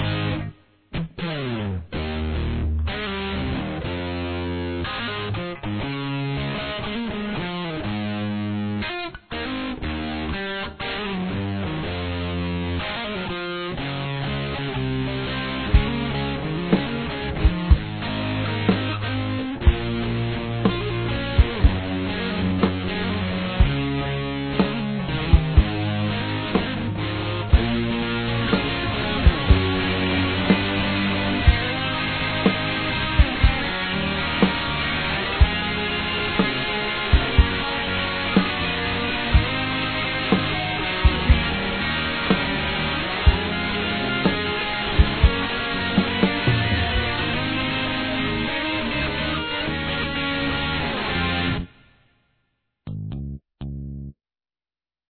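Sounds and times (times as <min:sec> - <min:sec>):
guitar song with verse and chorus: 0:00.0 - 0:51.9, 0:52.9 - 0:54.1.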